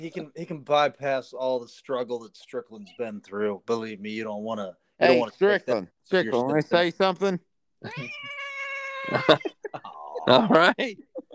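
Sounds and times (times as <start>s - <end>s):
speech: 0.0s - 11.1s
laughter: 7.8s - 8.2s, 9.1s - 11.3s
cat meowing: 7.9s - 9.5s.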